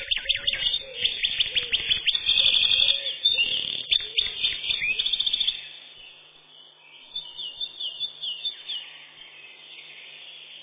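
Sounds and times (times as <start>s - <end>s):
Eurasian wren Troglodytes troglodytes song: 0.0s - 10.6s.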